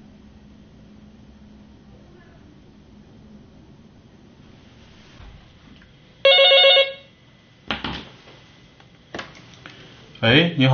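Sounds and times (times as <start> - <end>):
telephone ringing with electronic tone: 6.2 - 7.1
speech: 10.2 - 10.7.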